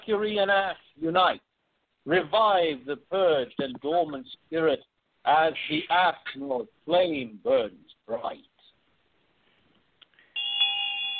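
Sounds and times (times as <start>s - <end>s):
speech: 0.1s - 8.5s
ritual hand bell ringing: 10.4s - 11.1s.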